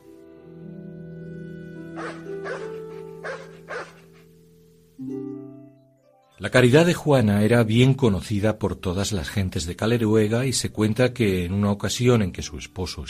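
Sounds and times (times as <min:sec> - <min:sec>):
sustained musical tones: 0:00.0 - 0:06.9
dog barking: 0:02.0 - 0:04.3
speech: 0:06.4 - 0:13.0.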